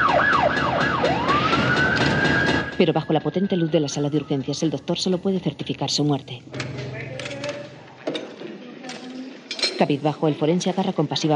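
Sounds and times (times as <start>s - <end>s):
police car and ambulance sirens wailing on a street: 0.0s - 6.0s
speech: 2.8s - 6.9s, 9.8s - 11.3s.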